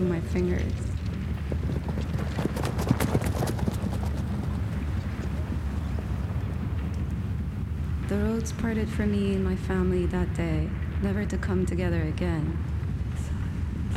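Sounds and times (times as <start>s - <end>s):
horse hooves galloping: 0.0s - 9.4s
constant low rumble: 0.0s - 13.9s
speech: 0.2s - 2.5s, 8.1s - 12.7s.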